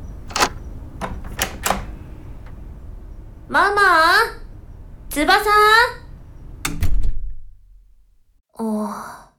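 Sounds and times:
key unlocking a locked front door: 0:00.3 - 0:02.6
speech: 0:03.5 - 0:04.4, 0:05.2 - 0:06.0, 0:08.6 - 0:09.2.

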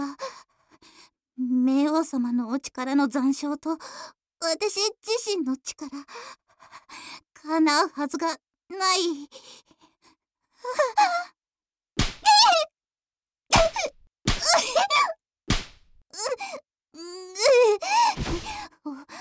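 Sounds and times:
speech: 0:02.0 - 0:09.7, 0:10.6 - 0:11.4, 0:16.2 - 0:19.1
spanking slaps on buttocks: 0:12.0 - 0:12.4, 0:13.5 - 0:14.8, 0:15.5 - 0:16.0
person wailing and yelping with high-pitched cries: 0:12.2 - 0:12.7, 0:13.5 - 0:15.2, 0:16.2 - 0:18.6.

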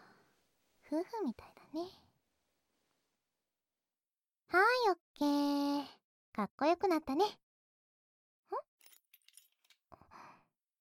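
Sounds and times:
speech: 0:00.9 - 0:02.1, 0:04.5 - 0:07.4
spare key and coins jingling while passed from hand to hand: 0:08.8 - 0:09.8.

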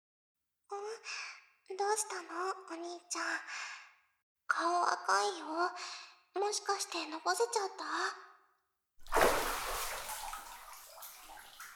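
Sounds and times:
speech: 0:01.0 - 0:03.7, 0:04.5 - 0:08.3
water splashing in a bathtub as someone bathes: 0:09.0 - 0:11.7.

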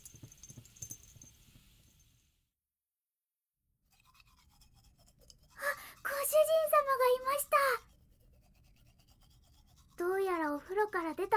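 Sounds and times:
toothbrush scrubbing teeth at a washbasin: 0:03.9 - 0:11.3
speech: 0:10.8 - 0:11.3.

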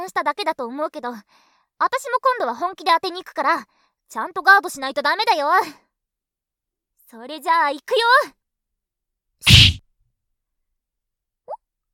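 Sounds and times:
speech: 0:00.1 - 0:05.8, 0:07.1 - 0:08.4, 0:09.4 - 0:09.8
sharp broadband thwack of a punch hitting a face: 0:09.5 - 0:09.8.

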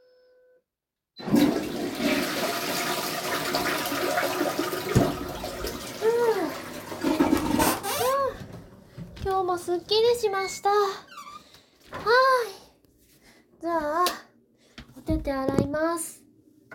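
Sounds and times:
toilet flushing: 0:01.2 - 0:08.8
speech: 0:09.7 - 0:11.1, 0:12.0 - 0:12.6, 0:13.6 - 0:14.2, 0:15.1 - 0:16.2
chirpy squeaks: 0:10.2 - 0:11.5.

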